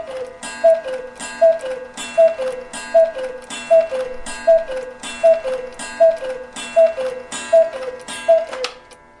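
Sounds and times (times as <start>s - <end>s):
cuckoo clock calling: 0.0s - 9.0s
cuckoo clock mechanical clatter: 0.0s - 9.0s.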